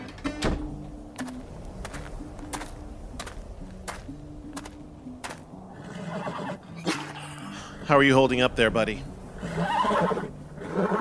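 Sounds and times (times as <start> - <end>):
horse whinnying: 5.8 - 7.2, 9.4 - 10.9
speech: 7.9 - 9.1, 9.9 - 10.2.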